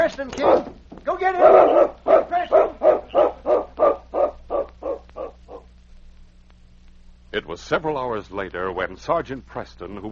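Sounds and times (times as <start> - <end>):
speech: 0.2 - 2.2, 7.6 - 10.1
dog barking: 0.4 - 0.7, 1.4 - 5.7.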